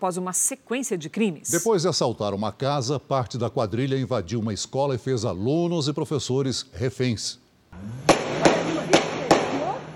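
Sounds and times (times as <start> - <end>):
speech: 0.0 - 8.5
sharp gunshots in a shootout: 8.0 - 9.9.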